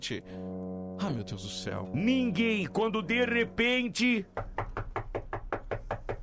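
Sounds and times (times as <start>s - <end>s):
speech: 0.0s - 4.5s
knocking on a door: 4.4s - 6.2s.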